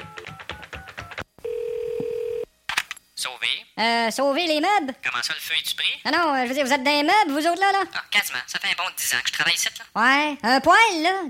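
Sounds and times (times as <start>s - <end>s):
steady single telephone tone: 0.8s - 2.5s
speech: 3.2s - 11.2s.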